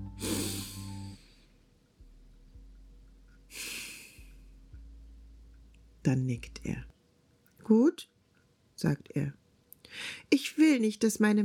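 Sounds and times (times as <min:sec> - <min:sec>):
deep breath drawn in: 0:00.2 - 0:01.4, 0:09.9 - 0:10.2
slow airy exhale: 0:00.2 - 0:01.4, 0:03.5 - 0:04.2
speech: 0:06.0 - 0:06.9, 0:07.7 - 0:08.1, 0:08.8 - 0:11.4.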